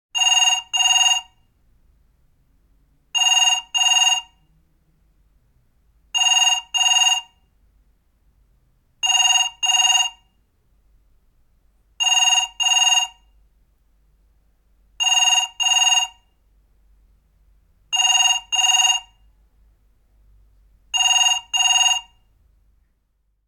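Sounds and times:
telephones: 0:00.2 - 0:01.3, 0:03.2 - 0:04.4, 0:06.2 - 0:07.3, 0:09.0 - 0:10.2, 0:12.0 - 0:13.2, 0:15.0 - 0:16.2, 0:18.0 - 0:19.1, 0:21.0 - 0:22.1.

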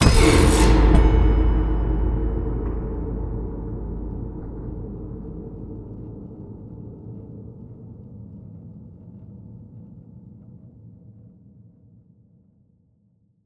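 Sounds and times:
strum slam: 0:00.0 - 0:06.6
cinematic metal impacts: 0:00.0 - 0:07.4.

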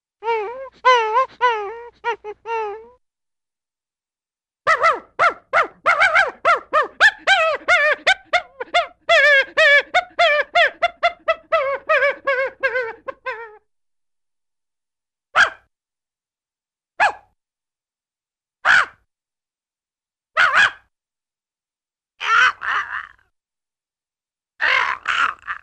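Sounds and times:
funny cartoon dog sounds: 0:00.2 - 0:03.0, 0:04.7 - 0:13.6, 0:15.4 - 0:15.7, 0:18.6 - 0:19.0, 0:20.4 - 0:20.9, 0:22.2 - 0:23.2, 0:24.6 - 0:25.6.

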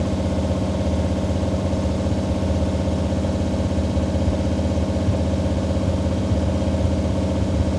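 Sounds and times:
Lamborghini automobile idling: 0:00.0 - 0:07.7.

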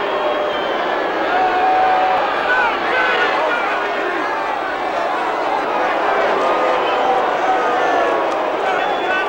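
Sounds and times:
baseball crowd booing: 0:00.0 - 0:09.2.

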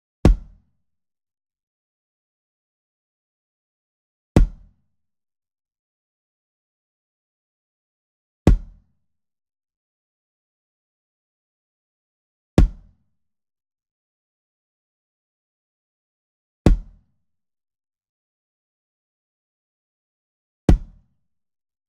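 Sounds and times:
small drum kit kick drum soft hit: 0:00.3 - 0:00.6, 0:04.4 - 0:04.7, 0:08.5 - 0:08.8, 0:12.6 - 0:12.9, 0:16.7 - 0:17.0, 0:20.7 - 0:21.0.

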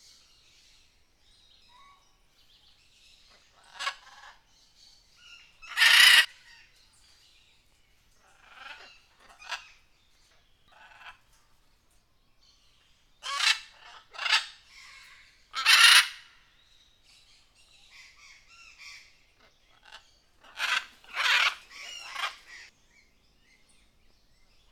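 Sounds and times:
jungle birds giving harsh squawking calls: 0:05.6 - 0:06.3, 0:13.2 - 0:16.3, 0:18.0 - 0:22.7.

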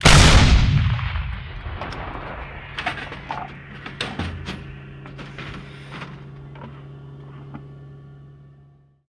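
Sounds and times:
artillery cannon firing: 0:00.0 - 0:06.5.

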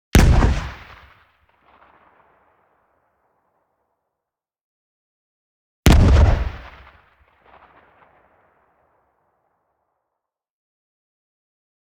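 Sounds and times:
short dull poof explosion: 0:00.2 - 0:00.8, 0:05.9 - 0:06.6.

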